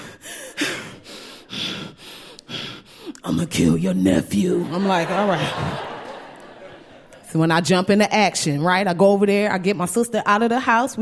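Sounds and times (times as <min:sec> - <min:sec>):
voice imitating heavy exasperated breathing on the phone: 0:00.0 - 0:03.2
speech: 0:03.3 - 0:05.9, 0:07.3 - 0:11.0
laughter: 0:04.4 - 0:07.4.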